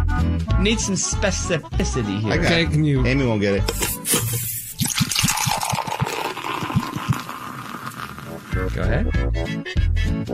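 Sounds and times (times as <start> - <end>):
speech: 0.6 - 4.4, 8.6 - 10.3
beer glugging out of a bottle into a glass: 4.0 - 8.7.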